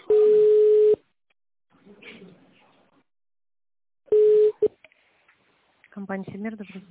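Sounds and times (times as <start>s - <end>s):
telephone ringback tone while a call to a company connects: 0.1s - 1.0s, 4.1s - 4.7s
speech: 6.1s - 6.9s.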